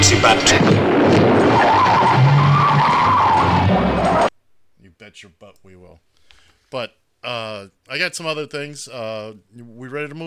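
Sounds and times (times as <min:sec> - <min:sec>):
car tires screeching as car brakes hard and skids: 0:00.0 - 0:04.3
speech: 0:00.1 - 0:01.3, 0:05.0 - 0:10.2.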